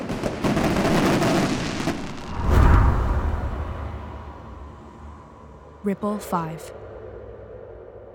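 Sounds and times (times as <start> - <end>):
fireworks exploding: 0.0 - 4.6
speech: 5.8 - 6.8.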